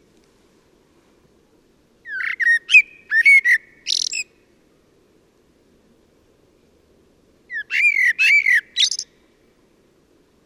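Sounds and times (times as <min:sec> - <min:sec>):
common blackbird Turdus merula singing fluty song phrases: 0:02.0 - 0:04.3, 0:07.5 - 0:09.2.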